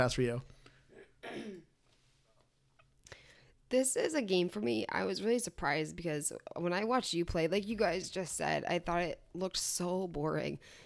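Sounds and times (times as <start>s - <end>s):
speech: 0.0s - 0.6s, 3.7s - 10.8s
single sharp cough: 0.9s - 1.8s.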